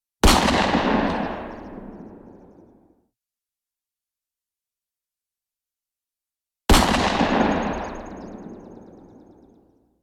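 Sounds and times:
big gun shots close: 0.2s - 2.1s, 6.7s - 9.2s.

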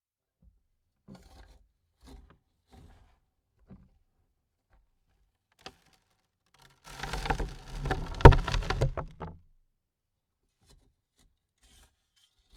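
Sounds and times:
dirt on coffin lid: 6.9s - 9.3s.

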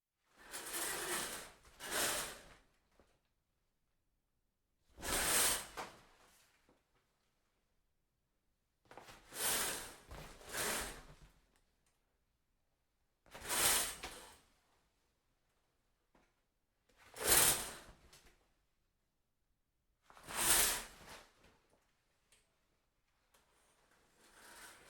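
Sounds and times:
shower curtain being pulled: 0.4s - 2.6s, 5.0s - 6.4s, 9.1s - 11.2s, 13.3s - 14.3s, 17.1s - 18.0s, 20.2s - 21.3s, 23.8s - 24.8s.

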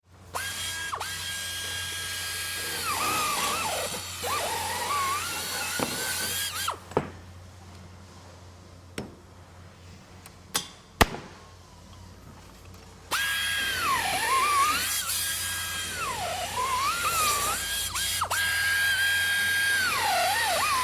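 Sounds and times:
drilling at construction site: 0.3s - 6.8s, 13.1s - 20.8s.

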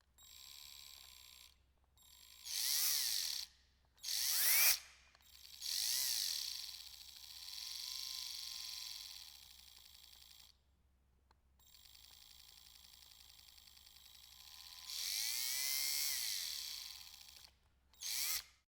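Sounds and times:
household drill: 2.3s - 10.4s, 13.9s - 18.6s.

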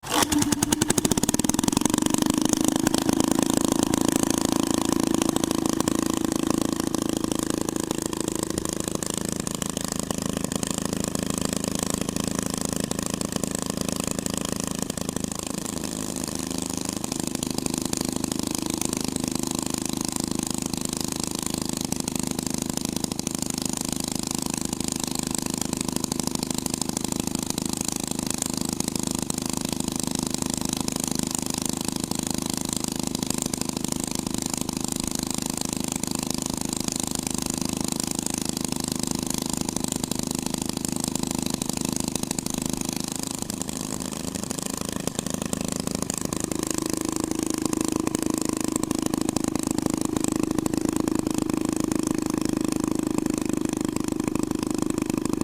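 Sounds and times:
hot rod twin engine: 0.0s - 55.4s.

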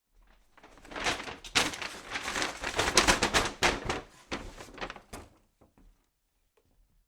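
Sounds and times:
paper bag opening: 0.6s - 5.4s.

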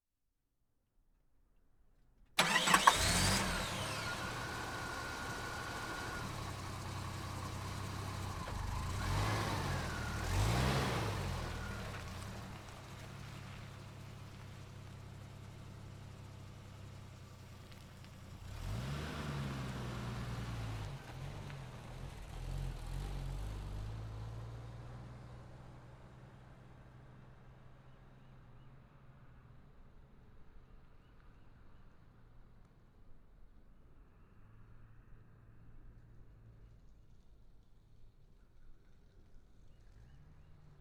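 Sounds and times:
SUV backing out and returning: 2.4s - 28.2s.

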